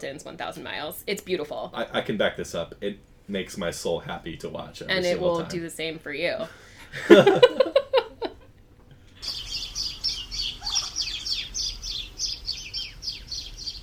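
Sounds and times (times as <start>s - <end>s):
speech: 0.0s - 7.8s
laughter: 6.8s - 8.5s
little birds chirping in a high-pitched chorus: 9.1s - 13.8s.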